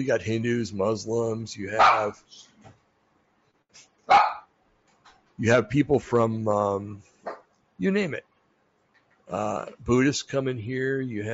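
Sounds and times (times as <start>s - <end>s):
speech: 0.0s - 2.8s, 5.4s - 7.1s, 7.8s - 8.3s, 9.3s - 11.3s
dogs barking in a room: 1.8s - 2.2s, 4.1s - 4.5s.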